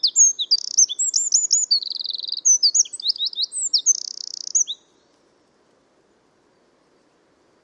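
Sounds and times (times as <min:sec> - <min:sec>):
Eurasian wren singing: 0:00.0 - 0:05.0.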